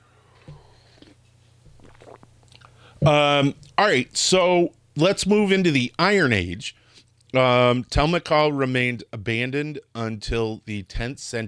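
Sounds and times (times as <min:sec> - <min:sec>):
low steady hum: 0:00.0 - 0:11.4
person sipping coffee: 0:00.3 - 0:02.9
person swallowing coffee: 0:00.4 - 0:03.8
speech: 0:03.0 - 0:11.4.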